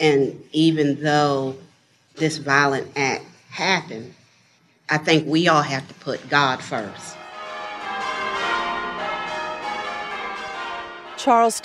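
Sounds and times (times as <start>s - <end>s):
speech: 0.0s - 4.2s, 4.9s - 7.2s, 11.2s - 11.6s
several church bells pealing together: 7.2s - 11.2s.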